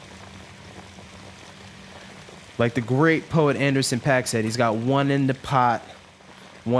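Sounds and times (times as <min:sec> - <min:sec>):
artichokes bubbling and sizzling in frying oil: 0:00.0 - 0:06.7
speech: 0:02.6 - 0:06.0.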